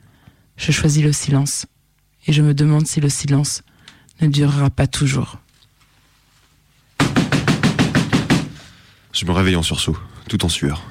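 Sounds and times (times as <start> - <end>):
speech: 0.6 - 5.4, 9.2 - 10.8
heavy pounding on a door: 7.0 - 8.6.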